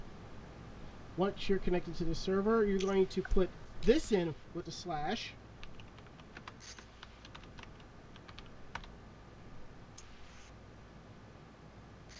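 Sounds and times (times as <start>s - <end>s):
steady low hiss: 0.0s - 12.1s
speech: 1.2s - 5.4s
light key clicks typing on a computer keyboard: 5.6s - 8.9s.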